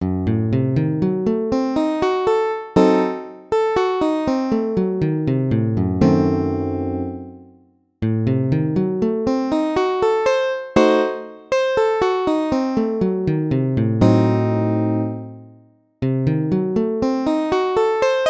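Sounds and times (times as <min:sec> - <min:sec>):
A diminished arpeggio: 0:00.0 - 0:18.2.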